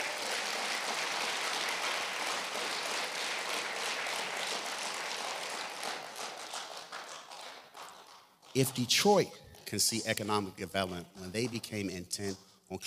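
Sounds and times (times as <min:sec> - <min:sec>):
audience clapping for a city street department: 0:00.0 - 0:08.9
speech: 0:08.6 - 0:12.8.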